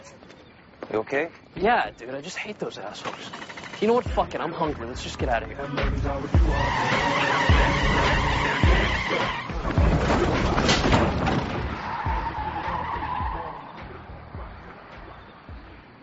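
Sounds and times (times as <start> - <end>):
speech: 0.9 - 11.5
stolen car engine revving and tearing away: 5.0 - 16.0
tires squealing and skidding: 5.6 - 16.0.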